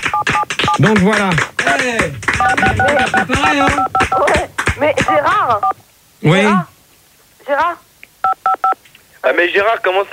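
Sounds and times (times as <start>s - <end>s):
speech: 0.8s - 6.7s, 7.5s - 7.9s, 8.6s - 10.1s
voice imitating telephone dialing tones: 2.4s - 5.8s.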